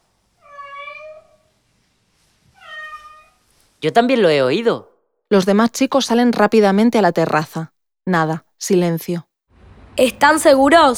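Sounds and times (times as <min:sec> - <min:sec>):
timid cat meow: 0:00.4 - 0:01.5, 0:02.6 - 0:03.4
speech: 0:03.8 - 0:09.3, 0:10.0 - 0:10.9.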